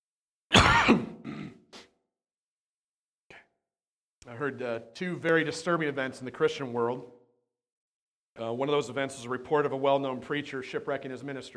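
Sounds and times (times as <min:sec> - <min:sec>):
throat clearing during a sermon: 0:00.5 - 0:01.9
speech: 0:04.3 - 0:07.2, 0:08.4 - 0:11.5.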